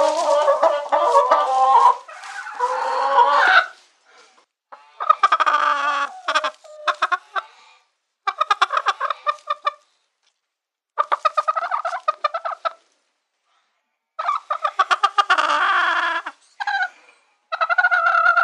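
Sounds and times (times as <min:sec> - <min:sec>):
domestic chicken clucking and squawking: 0:00.0 - 0:03.9, 0:04.7 - 0:07.5, 0:08.2 - 0:09.9, 0:11.0 - 0:12.9, 0:14.2 - 0:18.4.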